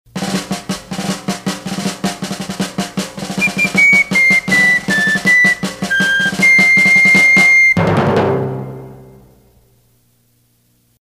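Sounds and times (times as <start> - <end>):
drums playing instrumental: 0.1 - 9.3
fife playing instrumental: 0.3 - 7.8.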